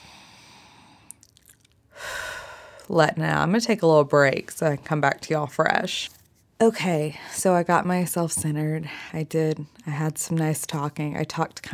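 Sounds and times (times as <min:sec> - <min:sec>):
deep breath in: 0:00.0 - 0:01.1, 0:01.9 - 0:02.9
speech: 0:02.9 - 0:11.7.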